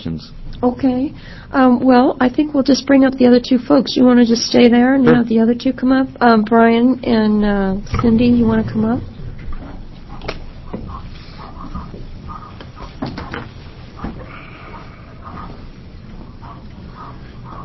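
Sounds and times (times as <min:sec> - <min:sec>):
speech: 0:00.0 - 0:09.1
steady rumbling background: 0:00.0 - 0:17.6
sharp knocks: 0:07.9 - 0:09.6
dog whining and yelping through heater system ducts: 0:14.0 - 0:17.6.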